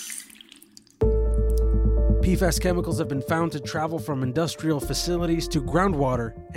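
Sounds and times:
faucet being turned on: 0:00.0 - 0:00.8
quiet trickling then loud steady gush of running tap water: 0:00.0 - 0:01.0
speech: 0:02.3 - 0:06.5.

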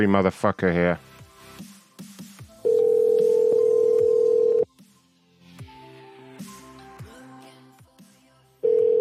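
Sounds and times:
speech: 0:00.0 - 0:01.1
steady electronic phone ring tone of an unanswered line: 0:02.6 - 0:04.7, 0:08.6 - 0:08.9.

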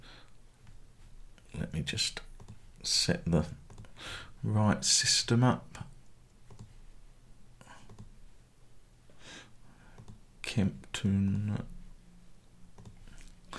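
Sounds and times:
speech: 0:01.5 - 0:05.9, 0:10.6 - 0:11.8
computer mouse clicks: 0:02.4 - 0:02.6, 0:03.7 - 0:03.9, 0:06.5 - 0:06.8, 0:07.8 - 0:08.1, 0:10.0 - 0:10.2, 0:12.8 - 0:13.0.

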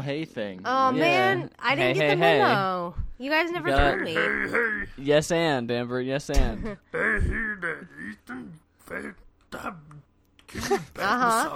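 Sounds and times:
speech: 0:00.0 - 0:11.5
throat clearing: 0:06.4 - 0:11.0.

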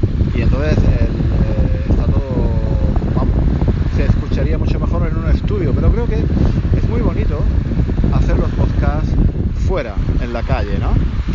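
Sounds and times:
wind blowing outdoors on a beach buffeting the microphone: 0:00.0 - 0:11.3
person talking: 0:00.3 - 0:11.3.

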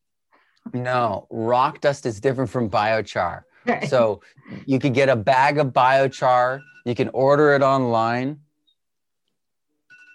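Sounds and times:
speech: 0:00.7 - 0:08.4
phone ringing with electronic trilling tone: 0:06.0 - 0:07.5, 0:09.8 - 0:10.1.

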